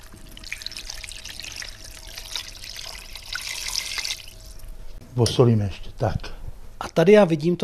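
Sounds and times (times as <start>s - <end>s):
water pouring into a cooking pot: 0.0s - 4.7s
speech: 5.2s - 6.4s, 7.0s - 7.6s.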